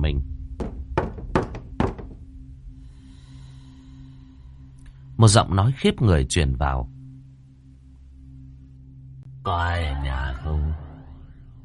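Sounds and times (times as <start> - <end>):
knocking on the door of a neighbouring room: 0.6 - 2.4
speech: 5.2 - 7.0, 9.5 - 10.8.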